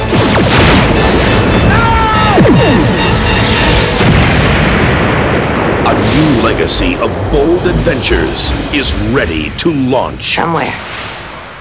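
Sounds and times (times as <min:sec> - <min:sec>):
starship firing photon torpedoes in a science-fiction battle: 0:00.0 - 0:08.8
swooping tonal sweeps: 0:00.2 - 0:04.2
speech: 0:06.8 - 0:11.0.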